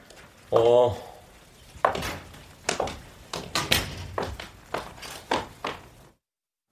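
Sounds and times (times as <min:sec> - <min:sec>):
speech: 0:00.5 - 0:01.1
old studio apartment door being opened: 0:01.9 - 0:05.4.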